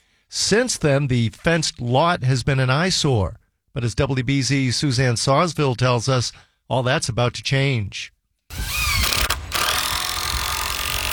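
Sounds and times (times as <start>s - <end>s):
speech: 0.3s - 8.7s
power tools whirring while building an arched wooden door on a vacant lot: 8.5s - 11.1s.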